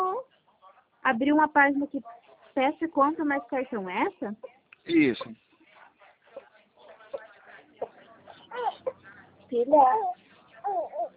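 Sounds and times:
speech: 1.0 - 5.4, 9.5 - 11.1
baby girl babbling: 8.5 - 9.0, 9.7 - 11.1.

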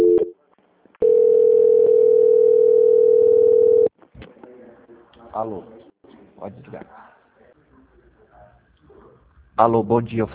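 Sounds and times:
telephone line tone during a call transfer: 0.0 - 0.3, 1.0 - 3.9
speech: 5.4 - 5.8, 6.4 - 7.1, 9.6 - 10.3.

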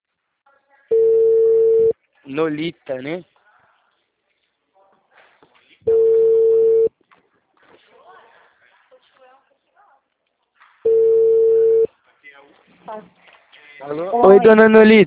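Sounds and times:
telephone line tones after a dropped call: 0.9 - 1.9, 5.9 - 6.9, 10.9 - 11.9
speech: 2.3 - 3.3, 12.9 - 13.2, 13.8 - 15.0.

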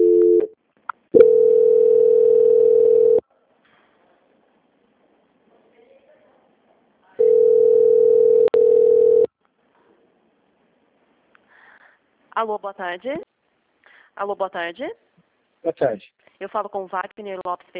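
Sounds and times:
low-pitched telephone tones while a call is transferred: 0.0 - 0.5, 1.2 - 3.2, 7.2 - 9.3
speech: 12.4 - 13.3, 14.2 - 15.0, 15.6 - 17.7.

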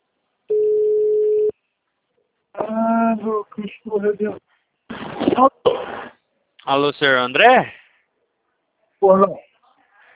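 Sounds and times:
ringback tone on an outgoing telephone call: 0.5 - 1.5
speech: 3.6 - 4.5, 5.4 - 5.9, 6.7 - 7.8, 9.0 - 9.4.

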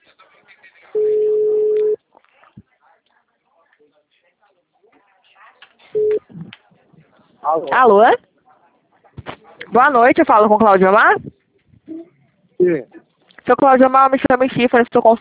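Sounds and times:
faint murmuring: 0.0 - 1.0, 2.0 - 9.8, 11.1 - 13.4
outgoing phone call ringing tone: 1.0 - 2.0
speech: 7.5 - 8.3, 9.7 - 11.3, 12.6 - 15.1.

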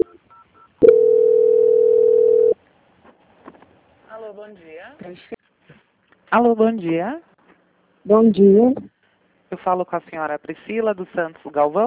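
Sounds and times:
telephone call transfer tone: 0.0 - 2.6
speech: 4.5 - 5.4, 6.3 - 7.3, 8.0 - 8.9, 9.5 - 11.8.

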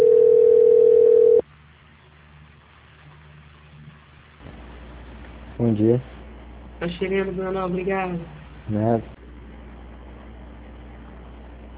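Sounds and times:
telephone tone while a call is transferred: 0.0 - 1.4
speech: 5.6 - 6.2, 6.8 - 9.2.

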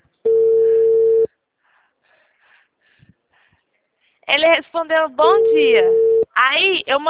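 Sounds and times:
telephone ringback tone while a call is being placed: 0.3 - 1.3, 5.3 - 6.2
speech: 4.3 - 7.0.

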